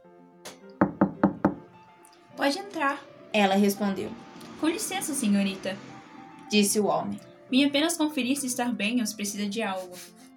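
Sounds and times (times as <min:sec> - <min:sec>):
faint steady tonal background: 0:00.4 - 0:10.1
firm knocks on a door: 0:00.8 - 0:01.7
speech: 0:02.4 - 0:05.9, 0:06.5 - 0:10.2.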